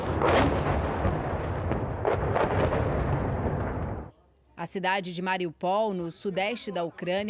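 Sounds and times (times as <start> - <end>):
rumbling artillery fire outside: 0.0 - 4.1
sharp booming explosions outside: 0.0 - 4.1
speech: 4.6 - 7.2.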